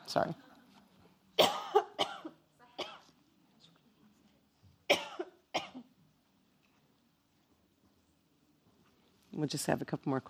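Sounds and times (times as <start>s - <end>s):
speech: 0.1s - 0.5s, 9.4s - 10.2s
person coughing harsh raspy bursts: 1.4s - 3.1s, 4.9s - 5.9s.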